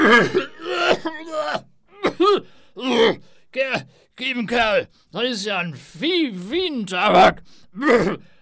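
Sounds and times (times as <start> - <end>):
voice imitating coughing after puffing on a pipe stuffed with dried hay: 0.0 - 3.2
speech: 0.1 - 1.6, 2.3 - 8.3.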